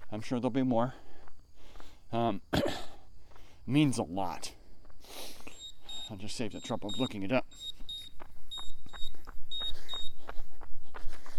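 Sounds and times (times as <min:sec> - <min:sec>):
speech: 0:00.1 - 0:01.1, 0:02.1 - 0:02.9, 0:03.7 - 0:05.2, 0:06.1 - 0:07.8
high-pitched electronic beep: 0:05.4 - 0:10.2.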